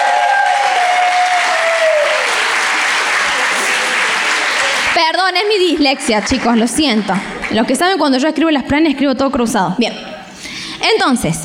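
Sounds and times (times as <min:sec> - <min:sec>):
audience applauding: 0:00.0 - 0:07.6
speech: 0:05.1 - 0:10.1, 0:10.8 - 0:11.4.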